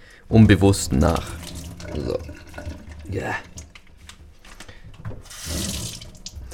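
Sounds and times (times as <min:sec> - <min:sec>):
speech: 0:00.3 - 0:03.6
running water: 0:00.4 - 0:04.3, 0:05.0 - 0:06.5
water splashing and trickling into a kitchen sink as mozzarella is drained: 0:00.5 - 0:03.9, 0:05.1 - 0:06.5.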